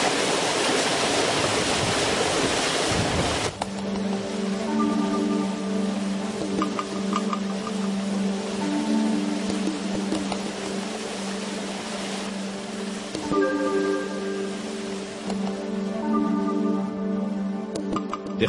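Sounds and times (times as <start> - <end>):
river water rushing past a watermill: 0.0 - 18.4.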